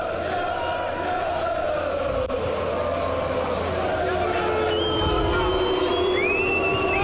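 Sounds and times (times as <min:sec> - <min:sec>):
large stadium crowd booing and jeering: 0:00.0 - 0:07.0
shrill whistles in a stadium crowd: 0:04.5 - 0:07.0.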